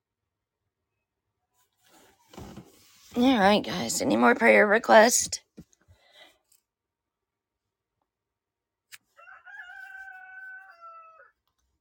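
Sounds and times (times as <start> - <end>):
speech: 3.2 - 5.4
rooster crowing: 9.2 - 11.4.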